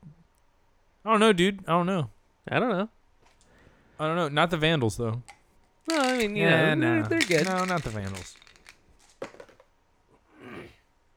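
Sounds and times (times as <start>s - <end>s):
speech: 1.0s - 3.0s, 4.0s - 8.4s
red and white dice clattering on a surface: 5.9s - 9.7s.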